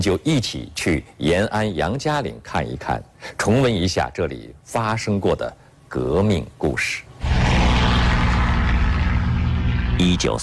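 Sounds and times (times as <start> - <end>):
speech: 0.0 - 7.1, 10.0 - 10.4
aircraft engines droning with propeller throb over Yan'an China: 7.2 - 10.4.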